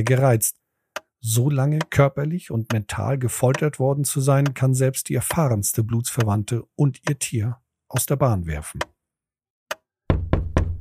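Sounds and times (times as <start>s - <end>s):
speech: 0.0s - 0.6s, 1.2s - 8.9s
knocking on a door: 10.1s - 10.7s.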